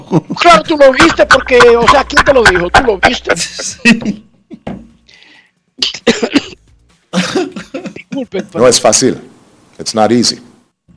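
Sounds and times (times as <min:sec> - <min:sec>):
laughter: 0:00.0 - 0:04.7, 0:07.2 - 0:08.6
speech: 0:00.1 - 0:04.8, 0:08.2 - 0:10.5
harsh coughing: 0:05.8 - 0:08.4.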